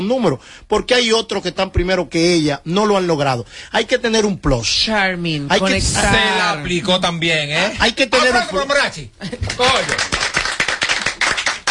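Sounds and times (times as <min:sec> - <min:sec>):
speech: 0:00.0 - 0:10.2
group applauding with crisp hand claps: 0:09.3 - 0:11.6.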